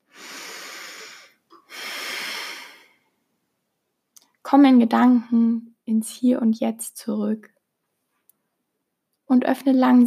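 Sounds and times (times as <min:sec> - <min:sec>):
deep breath in and out during a guided relaxation exercise: 0:00.0 - 0:03.2
speech: 0:04.5 - 0:07.6, 0:09.3 - 0:10.0.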